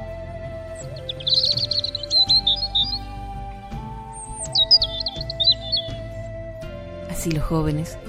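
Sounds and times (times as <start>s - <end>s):
low rhythmic musical accompaniment: 0.0s - 8.0s
soft steady musical tone: 0.0s - 8.0s
bird whistling a lively song of quick chirps and trills: 0.6s - 6.3s
speech: 7.2s - 8.0s.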